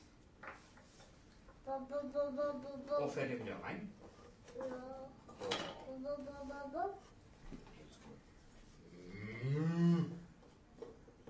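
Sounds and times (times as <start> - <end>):
faint noise: 0.0 - 11.2
speech: 1.7 - 8.3
cow mooing on a farm: 9.0 - 10.2.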